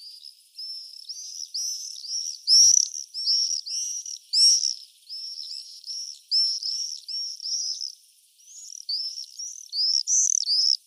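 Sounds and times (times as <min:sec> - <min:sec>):
common swifts Apus apus screaming: 0:00.2 - 0:10.8.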